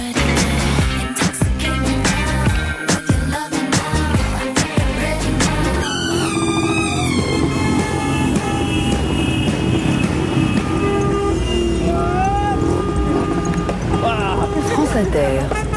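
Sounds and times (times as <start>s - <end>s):
city street traffic engines rumbling in Delhi: 0.2s - 15.7s
traffic horn blasts in Delhi: 5.8s - 15.7s.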